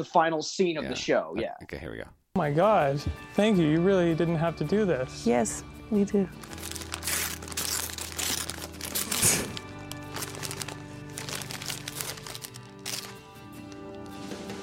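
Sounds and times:
speech: 0.0s - 6.6s
gift wrapping paper crinkling as a present is unwrapped: 6.4s - 14.6s.

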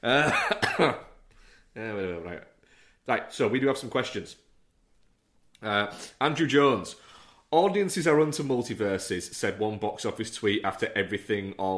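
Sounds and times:
speech: 0.0s - 1.0s, 1.8s - 4.5s, 5.6s - 11.7s
voiced cough and throat-clearing: 0.0s - 1.2s.

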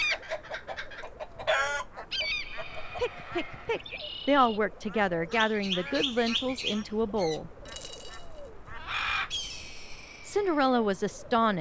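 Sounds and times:
flock of birds clucking and chattering: 0.0s - 10.0s
drawn-out bird call: 0.8s - 9.0s
speech: 3.3s - 7.6s, 10.4s - 11.5s.

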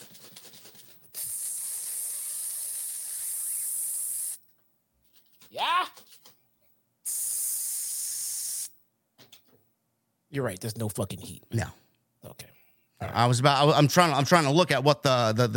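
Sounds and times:
spray bottle spraying water: 1.1s - 4.4s, 7.1s - 8.7s
speech: 10.3s - 11.8s, 13.2s - 15.5s.

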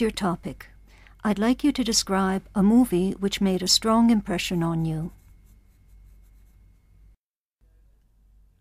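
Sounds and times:
speech: 0.0s - 5.2s
pencil writing notes on paper: 3.8s - 7.0s.

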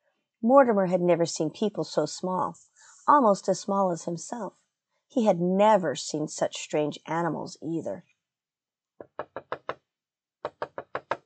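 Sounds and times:
speech: 0.4s - 8.1s
knocking on a door: 9.0s - 9.8s, 10.4s - 11.2s.

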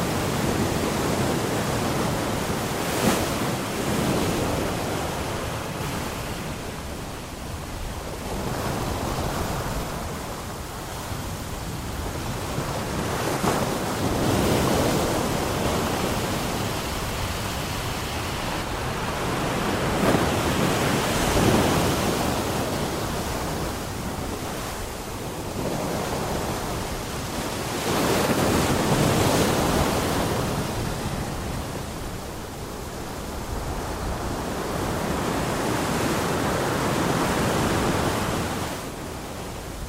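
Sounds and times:
sea waves crashing against a pier: 0.0s - 39.8s.

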